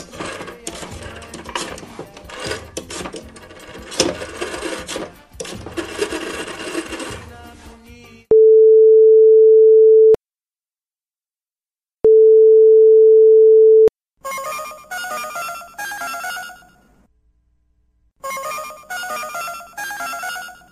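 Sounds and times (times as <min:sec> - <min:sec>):
telephone call ringing with long low-pitched tones: 0:08.3 - 0:10.2, 0:12.1 - 0:13.9.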